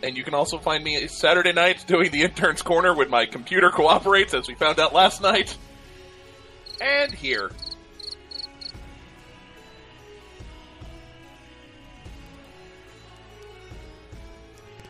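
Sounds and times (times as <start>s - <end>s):
speech: 0.0s - 5.7s, 6.8s - 7.7s
crickets chirping: 6.6s - 8.8s.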